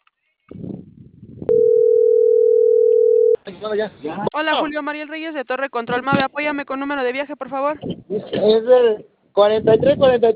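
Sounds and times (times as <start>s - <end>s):
telephone dial tone while placing a call: 1.5s - 3.4s
speech: 3.6s - 10.3s.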